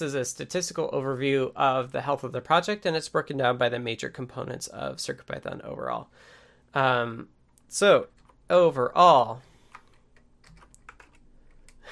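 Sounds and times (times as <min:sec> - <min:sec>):
speech: 0:00.0 - 0:09.5
typing on a computer keyboard: 0:09.7 - 0:11.8.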